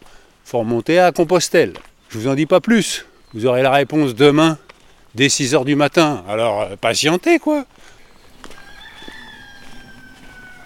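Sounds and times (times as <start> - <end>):
faint farmyard noise: 0.0 - 10.6
speech: 0.5 - 4.6, 5.2 - 8.6
rooster crowing: 8.4 - 10.6.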